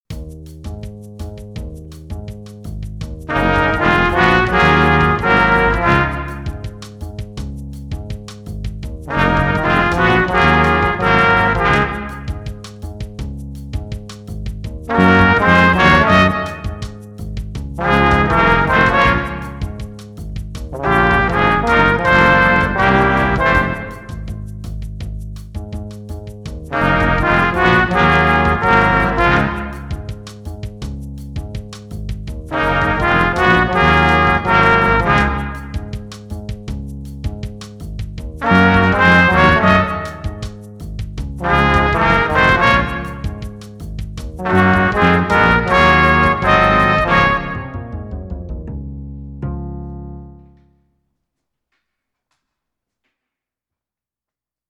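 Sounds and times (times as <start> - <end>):
cute orchestral music: 3.3 - 6.8, 9.1 - 12.6, 14.9 - 17.1, 17.8 - 20.0, 20.7 - 24.4, 26.7 - 30.2, 32.5 - 36.0, 38.4 - 40.4, 41.4 - 43.6, 44.4 - 50.6.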